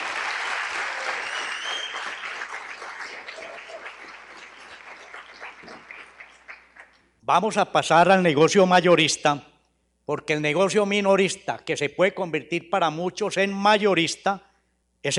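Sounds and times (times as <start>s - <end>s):
audience clapping: 0.0s - 7.1s
speech: 7.3s - 9.5s, 10.1s - 15.1s.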